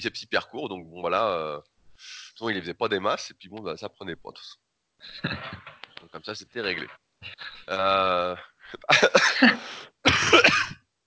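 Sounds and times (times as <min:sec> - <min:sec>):
speech: 0:00.0 - 0:10.8
rough raspy coughs: 0:05.1 - 0:05.8, 0:07.3 - 0:10.8
laughter: 0:05.1 - 0:05.9, 0:06.6 - 0:09.8.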